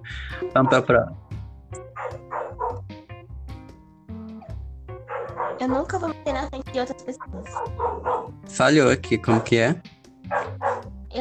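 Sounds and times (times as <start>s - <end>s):
speech: 0.1s - 1.3s, 5.6s - 11.1s
neighborhood dogs yipping: 0.5s - 0.9s, 1.8s - 2.8s, 4.4s - 5.8s, 7.4s - 8.4s, 9.2s - 9.7s, 10.3s - 10.9s
neighborhood dogs barking: 0.5s - 1.0s, 1.8s - 2.9s, 4.4s - 5.9s, 7.4s - 8.4s, 9.1s - 11.0s.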